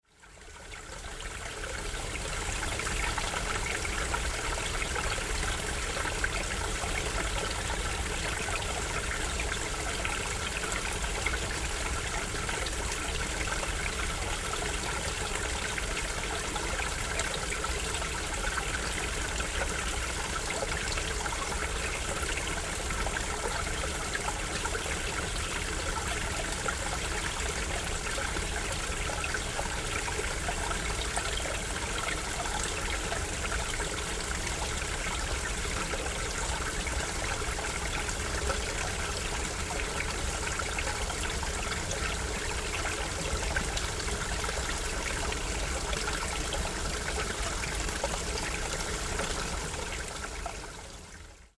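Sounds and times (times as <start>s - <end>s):
fountain: 0.0s - 51.5s.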